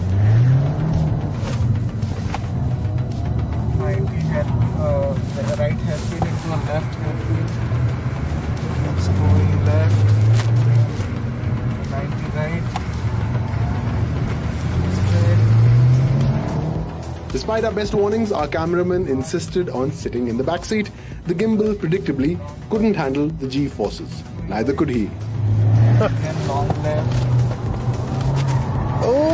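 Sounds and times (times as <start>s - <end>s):
RS sports car engine revving at full throttle heard from passenger seat: 0.0s - 18.3s, 25.1s - 29.3s
speech: 17.5s - 25.3s, 26.0s - 27.2s.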